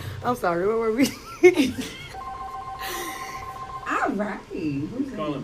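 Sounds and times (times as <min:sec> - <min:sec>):
speech: 0:00.3 - 0:02.0, 0:04.2 - 0:05.4
telephone ringing with an incoming call to a live on-air show: 0:02.1 - 0:04.7.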